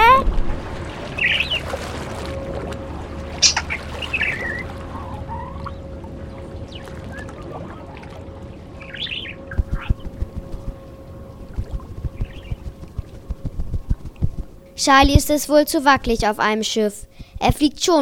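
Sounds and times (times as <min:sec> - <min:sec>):
faint constant hum: 0:00.0 - 0:17.9
budgerigar chirping aboard a moving ship: 0:03.4 - 0:04.6
speech: 0:14.8 - 0:17.9.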